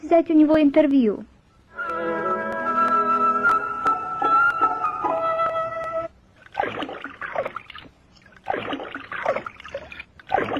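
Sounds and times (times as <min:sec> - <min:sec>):
speech: 0:00.1 - 0:01.3
steady musical-sounding tones: 0:01.7 - 0:06.2
raccoon dunking and swishing food in shallow stream water: 0:06.4 - 0:10.5.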